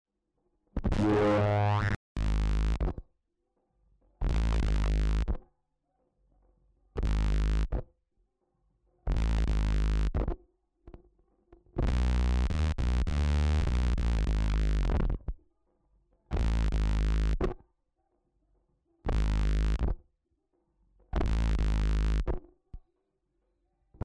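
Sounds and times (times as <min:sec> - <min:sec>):
bass: 0:00.7 - 0:03.1, 0:04.0 - 0:05.5, 0:06.3 - 0:07.9, 0:08.9 - 0:15.4, 0:16.0 - 0:17.6, 0:18.8 - 0:20.1, 0:20.8 - 0:22.9, 0:23.8 - 0:24.0.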